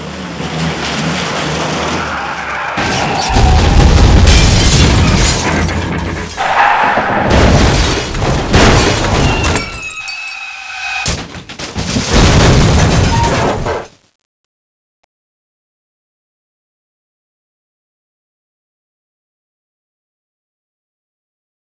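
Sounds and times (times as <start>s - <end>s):
crash: 0.6s - 14.0s.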